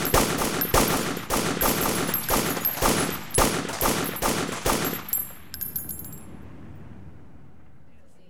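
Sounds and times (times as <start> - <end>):
gunshot ringing and echoes: 0.0 - 5.2
assault rifle shots fired into the sky during military shooting practice: 0.0 - 6.2.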